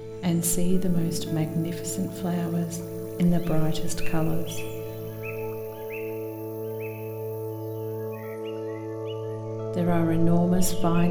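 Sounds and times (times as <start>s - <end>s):
steady humming tonal drone: 0.0s - 11.0s
speech: 0.2s - 4.8s, 9.8s - 11.0s
exotic birds singing in a lush tropical forest: 2.4s - 9.5s.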